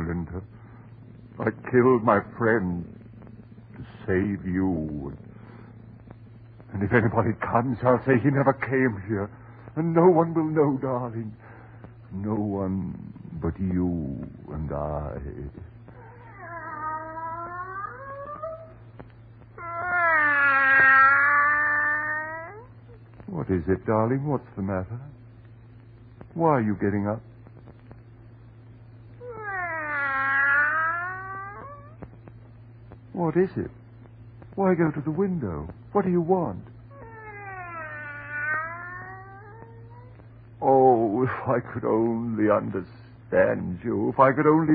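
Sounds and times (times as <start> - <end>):
low steady hum: 0.0 - 44.7
speech: 0.3 - 0.6, 1.4 - 3.0, 4.0 - 5.3, 6.7 - 11.4, 12.1 - 15.7, 23.3 - 25.2, 26.4 - 27.3, 33.2 - 33.8, 34.6 - 36.7, 40.6 - 44.7
cat yowling and caterwauling: 15.9 - 18.8, 19.6 - 22.7, 29.2 - 32.0, 36.9 - 40.2.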